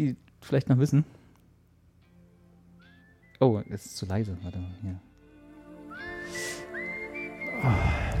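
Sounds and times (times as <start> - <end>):
speech: 0.0 - 1.2, 3.4 - 5.1, 7.6 - 8.1
person whistling a melody live: 2.8 - 4.8, 5.8 - 8.1.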